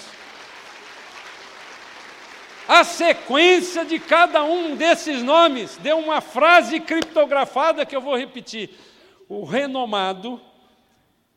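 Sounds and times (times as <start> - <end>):
audience applause: 0.0 - 5.7
speech: 2.7 - 10.5.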